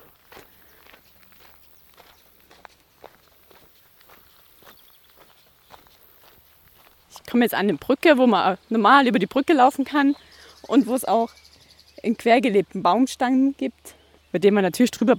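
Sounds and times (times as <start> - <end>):
hiker's footsteps walking on a gravel trail: 0.0 - 8.0
speech: 7.3 - 11.4, 12.0 - 15.1.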